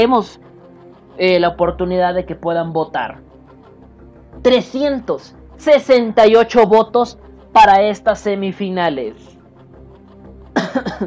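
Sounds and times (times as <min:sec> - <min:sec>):
speech: 0:00.0 - 0:00.4, 0:01.2 - 0:03.3, 0:04.4 - 0:09.4, 0:10.8 - 0:11.0
person coughing: 0:10.6 - 0:11.0.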